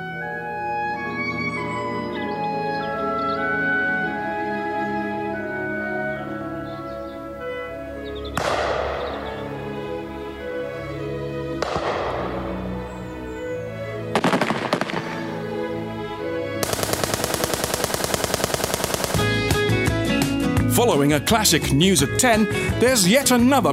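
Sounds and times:
orchestral music: 0.0 - 23.6
loud gunshots: 8.4 - 9.4, 11.6 - 12.7, 14.2 - 15.5, 16.6 - 19.7
rapid rattling burst of gunfire: 14.2 - 15.2, 16.6 - 19.7
speech: 21.0 - 23.7.

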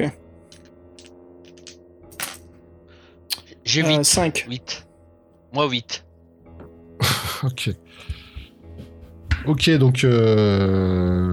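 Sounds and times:
speech: 0.0 - 0.2, 3.7 - 4.8, 5.5 - 6.1, 7.4 - 8.2, 9.4 - 11.3
two six-sided dice clattering onto a hard surface: 0.5 - 2.5
laughter: 7.0 - 7.6.

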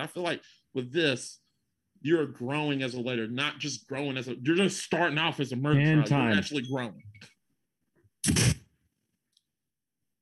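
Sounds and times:
speech: 0.0 - 1.4, 2.0 - 7.3, 8.2 - 8.5
single sharp sneeze: 8.2 - 8.7.

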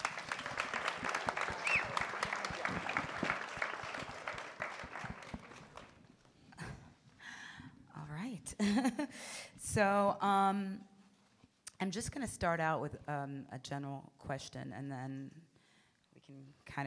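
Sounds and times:
audience applause: 0.0 - 6.1
laughter: 0.2 - 4.4
speech: 8.9 - 10.9, 11.8 - 15.4, 16.3 - 16.8.

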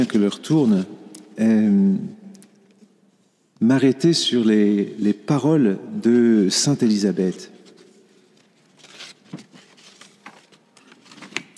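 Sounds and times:
speech: 0.0 - 2.2, 3.6 - 7.5
sheets of paper being shuffled: 7.6 - 11.5.

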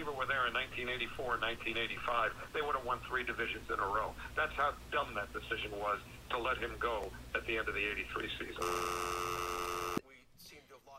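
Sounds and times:
speech: 0.0 - 9.5
telephone dial tone: 8.6 - 10.0.

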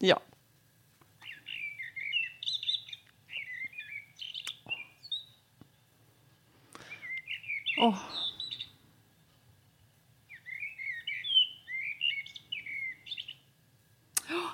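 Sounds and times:
speech: 0.0 - 0.3, 7.8 - 8.2
faint low hum: 0.0 - 14.5
common blackbird singing: 1.2 - 5.4, 6.9 - 8.8, 10.3 - 13.5.

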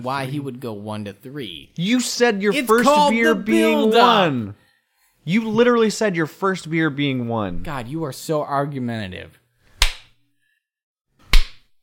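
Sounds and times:
speech: 0.0 - 4.6, 5.2 - 9.4
light soft slaps: 9.8 - 10.1, 11.3 - 11.7.

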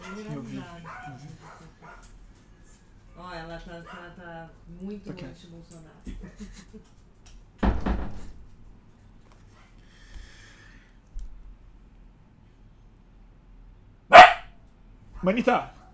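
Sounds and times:
small dog barking: 0.0 - 2.1, 14.1 - 14.5
speech: 3.2 - 7.0, 15.2 - 15.8
laughter: 6.1 - 6.9
small dog yapping: 14.1 - 14.5.

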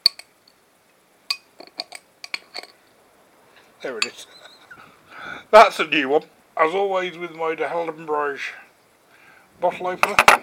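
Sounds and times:
glass clinks and scraping taps fishing a metal bottle cap out of a glass: 0.0 - 0.3, 1.3 - 2.8, 4.0 - 4.6
speech: 3.8 - 4.5, 5.2 - 8.6, 9.6 - 10.4.

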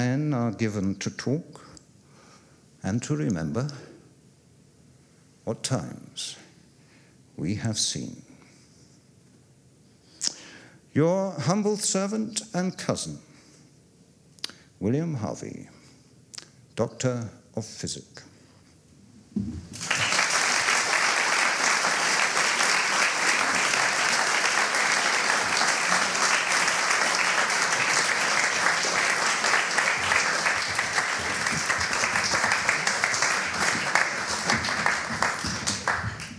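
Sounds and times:
speech: 0.0 - 1.7, 2.8 - 3.9, 5.5 - 6.4, 7.4 - 8.3, 10.9 - 13.3, 14.8 - 15.8, 16.8 - 18.3, 19.4 - 19.9
large audience applause: 19.7 - 36.3.

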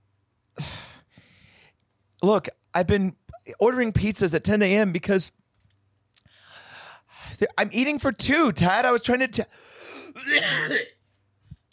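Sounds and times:
speech: 2.2 - 5.4, 7.4 - 11.0
single harsh throaty cough: 10.2 - 11.0.

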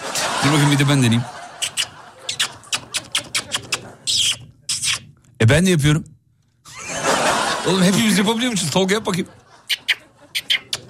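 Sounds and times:
laughter: 0.0 - 4.4, 6.7 - 10.8
speech: 0.4 - 1.4, 5.5 - 6.2, 7.6 - 9.8
squeaky kissing chirps on a palm imitating a budgie: 1.6 - 5.2, 9.7 - 10.8.

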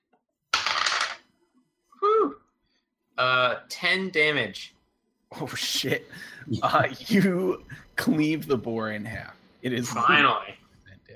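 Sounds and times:
dice clattering and tumbling across a hard tabletop: 0.5 - 1.3
speech: 3.2 - 10.6.

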